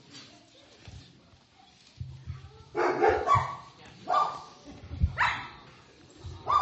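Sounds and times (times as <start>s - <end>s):
dog about three years old barking excitedly: 2.8s - 4.5s, 5.2s - 5.6s, 6.4s - 6.5s.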